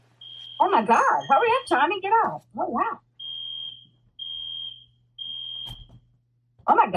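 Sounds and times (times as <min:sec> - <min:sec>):
fire alarm beeping with shrill high-pitched tones: 0:00.2 - 0:01.9, 0:03.2 - 0:06.0
speech: 0:00.6 - 0:03.0, 0:06.7 - 0:06.9.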